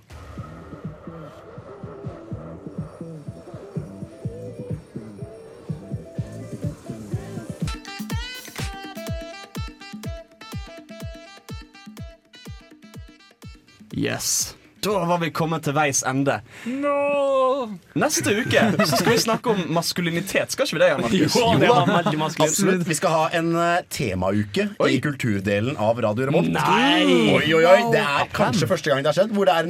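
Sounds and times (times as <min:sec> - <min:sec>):
instrumental reggae track with bass-heavy beat: 0:00.0 - 0:14.0
speech: 0:14.0 - 0:17.2, 0:18.0 - 0:29.6
laughter: 0:18.1 - 0:19.6, 0:20.9 - 0:22.8.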